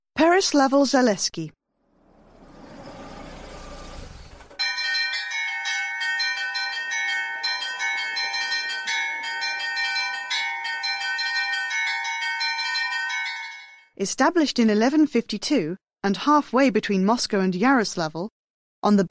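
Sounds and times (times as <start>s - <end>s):
speech: 0.2s - 1.6s, 14.0s - 19.0s
church bells of a bell tower ringing, largest weighing 32,000 kilograms: 4.2s - 13.9s.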